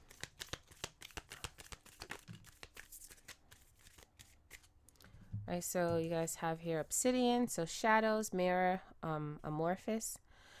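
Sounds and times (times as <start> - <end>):
crystal and gemstone oracle cards being shuffled: 0.0 - 4.7
speech: 5.5 - 10.2.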